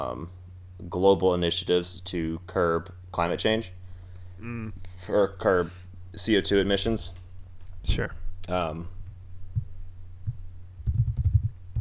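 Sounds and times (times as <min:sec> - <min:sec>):
speech: 0:00.0 - 0:03.8, 0:04.4 - 0:07.2, 0:07.8 - 0:09.0
low steady hum: 0:00.0 - 0:11.7
typing on a computer keyboard: 0:10.8 - 0:11.7.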